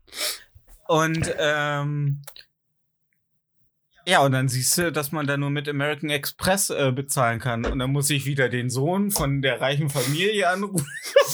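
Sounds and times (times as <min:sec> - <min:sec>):
person sneezing: 0:00.0 - 0:00.5, 0:10.0 - 0:10.2
speech: 0:00.9 - 0:02.5, 0:04.1 - 0:11.3
laughter: 0:09.9 - 0:11.3.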